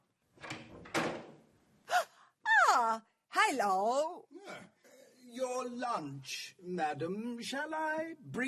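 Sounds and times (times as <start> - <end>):
door thudding shut: 0.7 - 1.4
speech: 3.5 - 4.2, 5.6 - 8.4.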